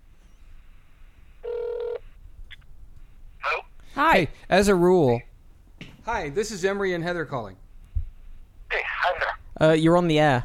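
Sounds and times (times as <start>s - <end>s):
quiet hiss: 0.0s - 10.4s
short electronic telephone ring: 1.4s - 2.0s
speech: 4.0s - 5.3s, 6.1s - 7.6s, 9.6s - 10.4s.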